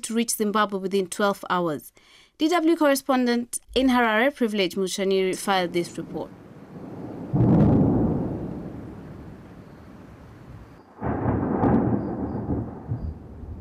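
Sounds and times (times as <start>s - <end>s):
speech: 0.0s - 6.4s
steady hiss of falling rain in Zimbabwe: 5.7s - 13.5s
heavy rolls of thunder in Zimbabwe: 6.7s - 13.5s.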